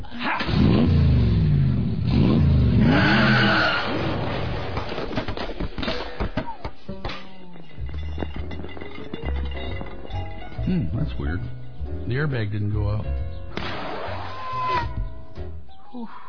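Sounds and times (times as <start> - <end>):
car engine revving hard as it accelerates: 0.5 - 4.0
scattered rattles and clunks: 4.2 - 12.1
speech: 11.2 - 13.2.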